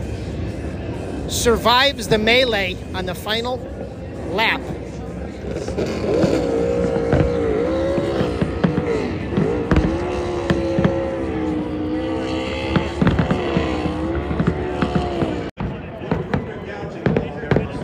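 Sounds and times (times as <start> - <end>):
crowd noise: 0.0 - 17.8
speech: 1.3 - 4.8, 5.5 - 6.3
race car engine revving during victory lap: 4.6 - 15.6
sharp bangs and pops: 8.0 - 11.0, 12.7 - 17.8.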